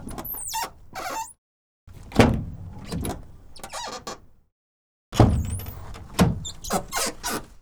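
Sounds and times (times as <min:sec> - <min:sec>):
Renault Master F3500 dCi135 squeaky door opening: 0:00.1 - 0:01.4, 0:03.6 - 0:04.2, 0:05.3 - 0:07.4.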